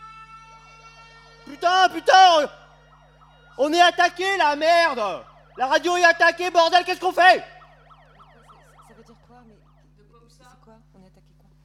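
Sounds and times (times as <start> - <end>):
ambulance siren wailing: 0.0 - 10.4
man shouting agitatedly: 1.4 - 2.6, 3.6 - 7.6
speech: 1.5 - 2.6, 3.6 - 7.5.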